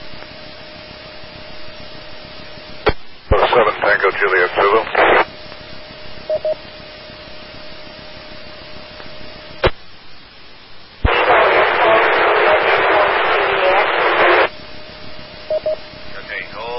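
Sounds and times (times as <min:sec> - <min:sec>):
loud harsh radio static from unreadable transmission: 0:02.8 - 0:05.3, 0:11.0 - 0:14.5, 0:16.1 - 0:16.7
speech: 0:04.0 - 0:05.0
short beeps: 0:06.3 - 0:06.6, 0:15.5 - 0:15.8.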